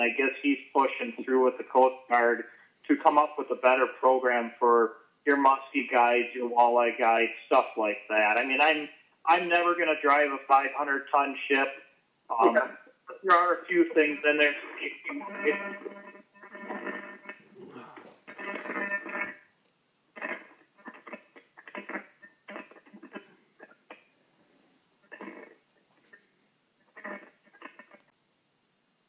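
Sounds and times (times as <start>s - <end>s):
speech: 0.0s - 16.1s
loud crackling static on a phone line: 0.0s - 29.0s.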